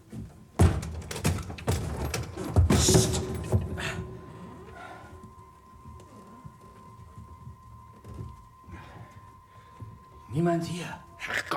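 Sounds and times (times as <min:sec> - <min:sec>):
door being opened carefully in the dark: 0:00.6 - 0:05.0
speech: 0:10.4 - 0:11.0.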